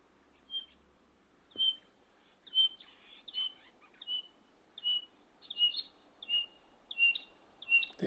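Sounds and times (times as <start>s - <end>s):
batis ticking notes: 0.4s - 0.8s, 1.5s - 8.0s
male batis whistled calls: 0.5s - 0.8s, 1.6s - 1.9s, 2.5s - 8.0s.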